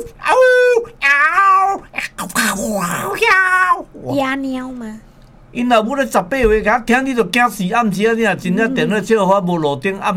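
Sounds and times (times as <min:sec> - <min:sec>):
person imitating a cat meowing: 0:01.0 - 0:04.0
speech: 0:02.6 - 0:03.5, 0:04.1 - 0:10.1.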